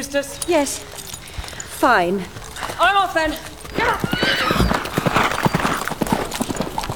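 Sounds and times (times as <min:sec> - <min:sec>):
speech: 0:00.0 - 0:01.0, 0:01.8 - 0:04.8
horse with a rider galloping: 0:00.0 - 0:06.9
rough outdoor ambience: 0:00.0 - 0:06.9.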